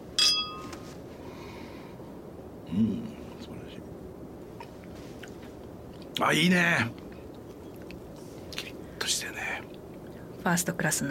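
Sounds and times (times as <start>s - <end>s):
glasses clinking together in a toast at a tasting: 0.1s - 0.8s
speech: 2.7s - 3.9s, 6.2s - 7.0s, 10.4s - 11.0s.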